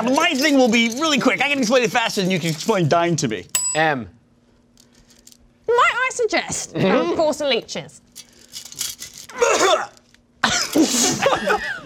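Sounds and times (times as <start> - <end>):
speech: 0.0 - 4.2, 5.7 - 8.0, 9.4 - 11.8
faint hum: 0.0 - 11.8
harsh throaty coughing bursts: 9.3 - 11.8.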